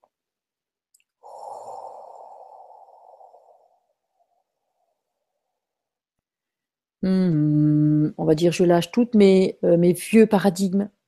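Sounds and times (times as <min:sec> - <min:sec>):
long breath during a guided meditation exercise: 0:01.2 - 0:05.8
speech: 0:07.0 - 0:07.5, 0:08.2 - 0:11.0.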